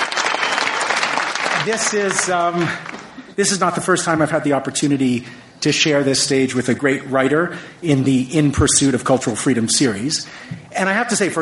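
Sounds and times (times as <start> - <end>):
crowd applauding: 0.0 - 3.2
speech: 1.6 - 11.4.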